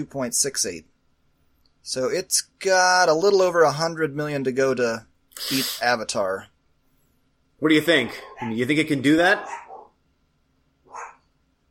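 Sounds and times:
speech: 0.0s - 0.9s, 1.8s - 6.5s, 7.6s - 9.6s
quiet hum: 0.0s - 11.6s
dog barking: 7.9s - 10.0s, 10.8s - 11.3s.

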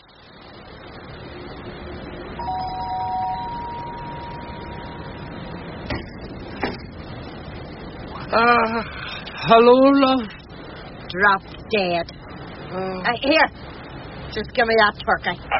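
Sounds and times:
steady hiss: 0.0s - 15.5s
doorbell chiming: 2.4s - 5.5s
speech: 8.4s - 10.4s, 11.1s - 13.6s, 14.3s - 15.5s.

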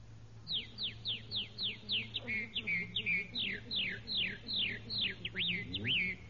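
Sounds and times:
faint low hum: 0.0s - 6.2s
person imitating a red-winged blackbird call: 1.9s - 6.2s.

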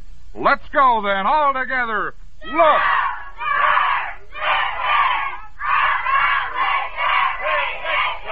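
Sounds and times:
speech: 0.4s - 3.0s
large group of young cadets shouting a squadron slogan in unison: 2.4s - 8.3s.

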